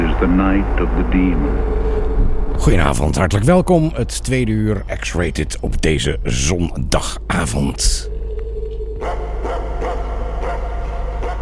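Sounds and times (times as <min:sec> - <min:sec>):
low hum: 0:00.0 - 0:11.4
speech: 0:00.2 - 0:08.1
dogs barking in sharp loud yaps: 0:09.0 - 0:11.4.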